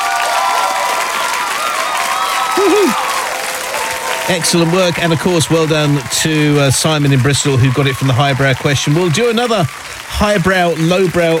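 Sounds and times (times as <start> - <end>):
dense applause from a sizable crowd: 0.0 - 11.3
scattered cheers: 0.0 - 11.3
brief rising whoop: 2.5 - 3.1
speech: 4.3 - 11.3.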